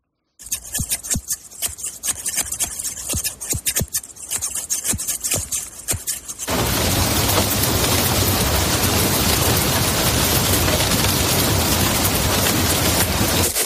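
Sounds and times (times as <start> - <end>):
hairdresser scissors snipping: 0.4 - 6.5
steady heavy rain: 6.5 - 13.5.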